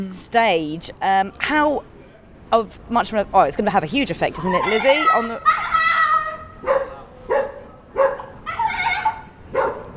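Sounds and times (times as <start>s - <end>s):
speech: 0.0s - 1.9s, 2.5s - 5.8s
dog giving loud strained almost howling barks: 6.6s - 9.9s.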